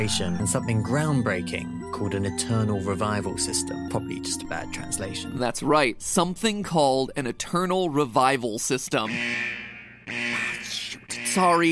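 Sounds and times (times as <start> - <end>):
speech: 0.0 - 9.5, 11.4 - 11.7
electronic alarm buzzer: 9.1 - 11.7.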